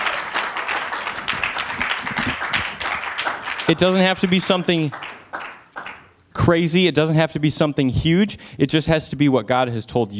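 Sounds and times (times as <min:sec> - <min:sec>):
audience applause: 0:00.0 - 0:06.1
speech: 0:03.7 - 0:05.0, 0:06.4 - 0:10.1.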